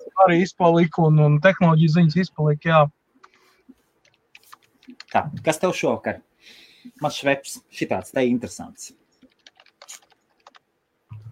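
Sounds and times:
speech: 0.2s - 3.0s, 5.1s - 9.0s
typing on a computer keyboard: 3.2s - 5.3s, 9.1s - 10.7s.

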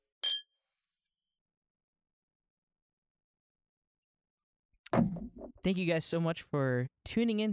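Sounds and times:
glasses clinking in a toast: 0.2s - 0.5s
speech: 5.0s - 7.5s.

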